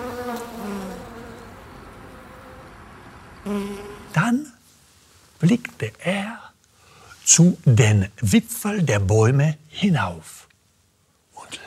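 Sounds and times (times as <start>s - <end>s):
bees buzzing while hovering: 0.0s - 2.7s, 3.4s - 4.2s
speech: 3.4s - 4.6s, 5.4s - 6.4s, 7.3s - 10.4s.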